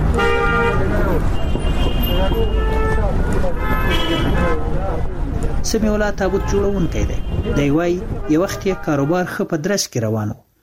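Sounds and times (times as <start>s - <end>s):
cars and rickshaws honking: 0.0s - 5.0s, 6.0s - 9.3s
busy street traffic with cars and rickshaws passing: 0.0s - 9.4s
speech: 4.1s - 10.5s.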